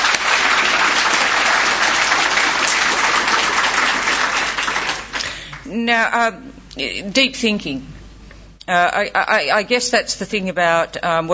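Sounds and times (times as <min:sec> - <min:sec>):
conference audience applauding: 0:00.0 - 0:05.7
speech: 0:05.8 - 0:08.0, 0:08.7 - 0:11.3.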